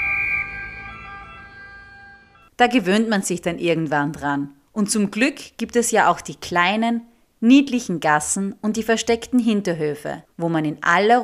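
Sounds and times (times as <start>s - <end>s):
emergency vehicle two-tone siren wailing in Rome: 0.0s - 2.5s
speech: 2.6s - 11.2s.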